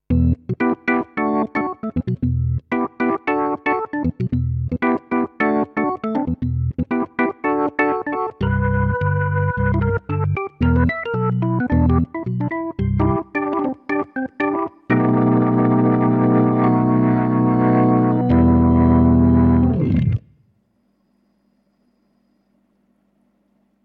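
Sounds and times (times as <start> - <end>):
drawbar organ with percussion: 0.1 - 20.2.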